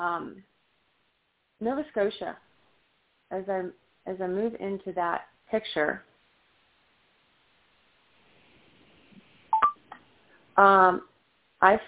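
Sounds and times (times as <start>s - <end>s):
speech: 0.0s - 0.6s, 1.6s - 2.5s, 3.3s - 6.1s, 10.6s - 11.8s
electronic chirps on a phone line during a call: 9.5s - 9.8s.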